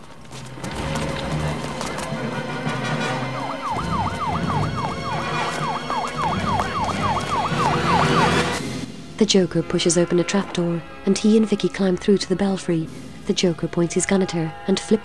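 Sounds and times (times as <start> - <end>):
police car sirens wailing: 0.6 - 9.0
speech: 9.2 - 15.0.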